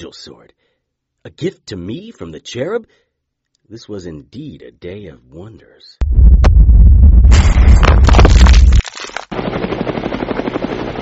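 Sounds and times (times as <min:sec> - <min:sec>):
speech: 0:00.0 - 0:03.0, 0:03.7 - 0:08.2
helicopter roaring in with rotor chop: 0:09.3 - 0:11.0.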